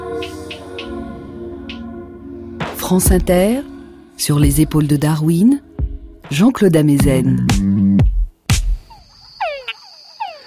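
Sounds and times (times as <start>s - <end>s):
speech: 2.9s - 5.7s, 6.3s - 7.7s
túngara frog mating call with descending whine and chucks: 8.8s - 10.4s.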